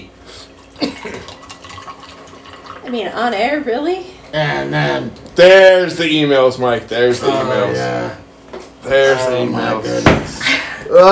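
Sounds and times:
Screwball drink poured into a glass: 0:00.6 - 0:03.1
speech: 0:02.9 - 0:08.2, 0:08.8 - 0:11.0.

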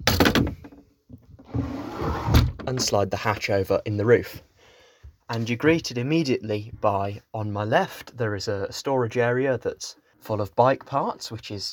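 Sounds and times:
wooden doors of a 10-metre narrowboat swinging shut and latching: 0:00.0 - 0:03.0
speech: 0:02.7 - 0:04.5, 0:05.3 - 0:11.7.

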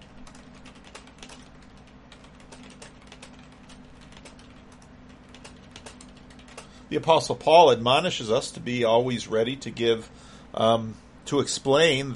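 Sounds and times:
typing on a computer keyboard: 0:00.1 - 0:06.7
speech: 0:06.9 - 0:12.1.

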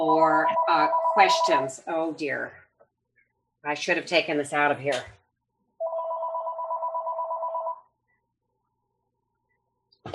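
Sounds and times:
speech: 0:00.0 - 0:02.6, 0:03.6 - 0:05.2
telephone ringing with two-tone trill: 0:00.4 - 0:01.7, 0:05.8 - 0:07.9.

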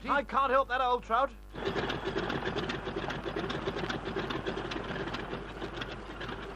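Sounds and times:
speech: 0:00.1 - 0:02.9
rapid rhythmic clatter: 0:01.5 - 0:06.5
aircraft engines roaring: 0:01.6 - 0:06.5.

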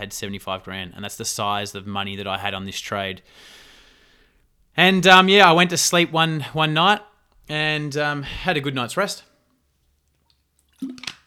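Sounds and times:
speech: 0:00.0 - 0:03.7, 0:04.8 - 0:09.3
person sipping water: 0:10.1 - 0:11.2
soft gulp of water: 0:10.7 - 0:11.2.

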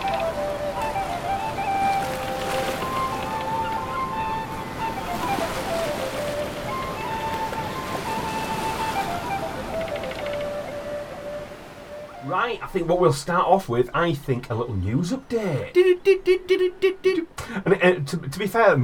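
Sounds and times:
sea waves washing onto the shore: 0:00.0 - 0:13.0
speech: 0:12.3 - 0:18.8.

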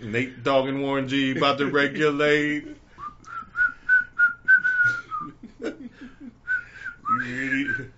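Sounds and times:
speech: 0:00.0 - 0:02.8, 0:07.2 - 0:07.9
person whistling a bouncy classic 90s song melody: 0:03.0 - 0:05.4, 0:06.5 - 0:07.9.

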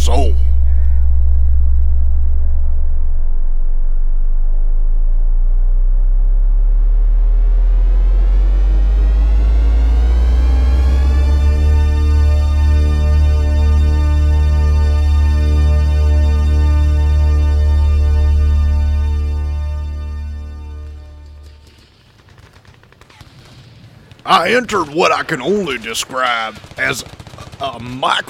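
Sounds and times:
loud deep droning hum on the road past Belcher in Kentucky: 0:00.0 - 0:21.7
speech: 0:24.4 - 0:28.2.

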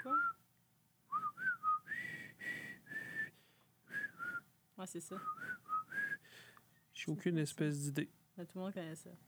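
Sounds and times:
person whistling a movie tune: 0:00.0 - 0:00.4, 0:01.1 - 0:04.4, 0:05.2 - 0:06.2
speech: 0:04.8 - 0:05.6, 0:07.1 - 0:09.2.

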